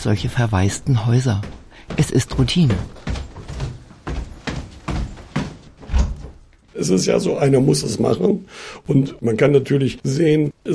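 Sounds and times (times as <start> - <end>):
speech: 0.0 - 3.0, 6.8 - 10.7
upstairs bedroom door in an empty house being closed: 2.7 - 6.4.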